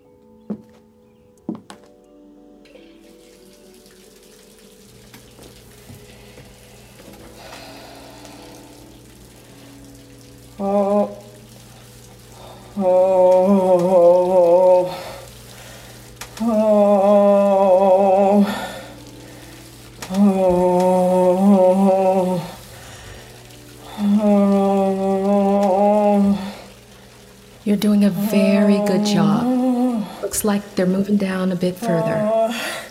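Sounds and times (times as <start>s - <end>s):
tap water running into a bathtub: 2.7s - 32.8s
loud wavering tonal groans: 6.1s - 30.8s, 31.5s - 32.8s
speech: 12.8s - 13.0s, 30.4s - 32.6s.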